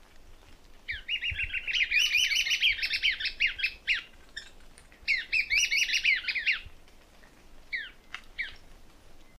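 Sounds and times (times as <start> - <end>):
caneleirinho-de-chapeu-preto singing: 0.9 - 6.7.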